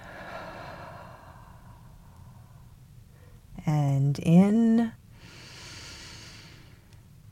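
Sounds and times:
slow exhale during a guided breathing exercise: 0:00.0 - 0:03.4, 0:05.2 - 0:06.9
speech: 0:03.6 - 0:05.0.

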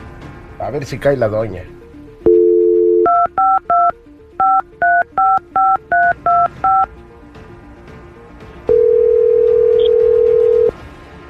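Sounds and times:
speech: 0:00.6 - 0:01.8
telephone dial tone: 0:02.3 - 0:06.9, 0:08.7 - 0:10.7.

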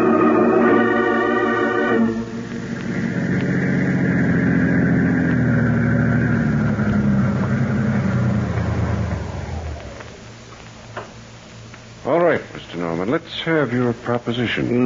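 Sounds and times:
car engine droning as the car drives and slows: 0:00.0 - 0:10.6
speech: 0:13.5 - 0:14.8.

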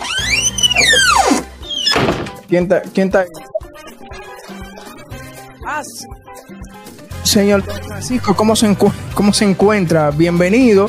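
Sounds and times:
door creaking open with a long squeaking hinge: 0:00.0 - 0:02.5
speech: 0:02.5 - 0:03.5, 0:05.8 - 0:06.2, 0:07.3 - 0:10.8.

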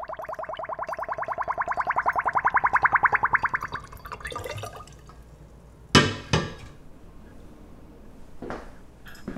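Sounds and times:
homemade plum wine draining through a funnel into a bottle: 0:00.0 - 0:05.2.

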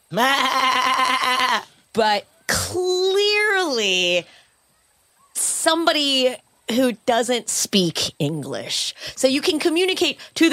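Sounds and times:
speech: 0:00.1 - 0:00.6, 0:02.0 - 0:03.0, 0:03.6 - 0:04.4, 0:05.6 - 0:10.5
goat bleating: 0:00.1 - 0:01.7.

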